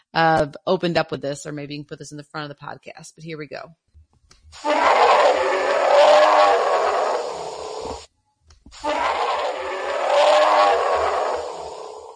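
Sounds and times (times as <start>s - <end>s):
speech: 0.2s - 3.8s, 4.5s - 5.4s
imitated grizzly bear roar: 4.6s - 8.0s, 8.8s - 12.1s.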